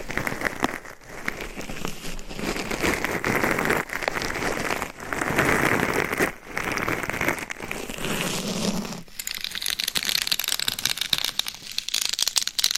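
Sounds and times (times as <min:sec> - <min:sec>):
sharper tapping and crinkling: 0:00.0 - 0:08.2, 0:09.1 - 0:12.7
scratching and rubbing on a binaural microphone with gloves and nails: 0:00.0 - 0:12.7.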